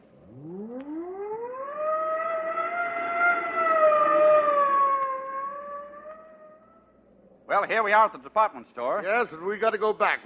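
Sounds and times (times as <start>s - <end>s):
police car siren wailing: 0.0s - 7.1s
speech: 7.6s - 10.2s.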